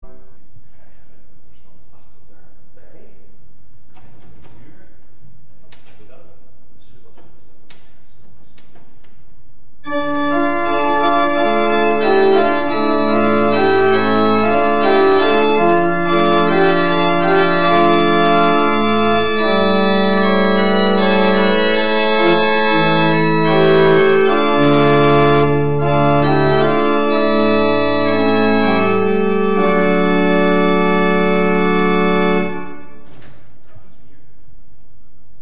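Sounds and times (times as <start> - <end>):
pipe organ with Holpijp, Prestant, Quint, Mixtuur and Subbas stops: 9.8 - 34.0.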